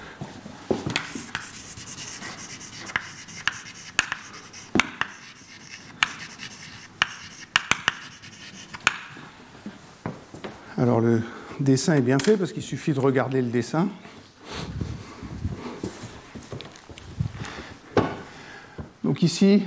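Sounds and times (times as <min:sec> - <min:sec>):
pen strokes scratching across a writing surface during a lecture: 0:00.9 - 0:09.1
speech: 0:10.9 - 0:14.2, 0:19.2 - 0:19.6.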